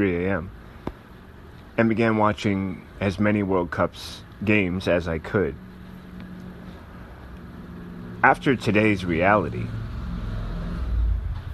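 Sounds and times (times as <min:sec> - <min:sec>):
speech: 0:00.0 - 0:00.6, 0:01.8 - 0:05.7, 0:08.2 - 0:09.8
motorcycle engine rumbling past: 0:06.2 - 0:11.5.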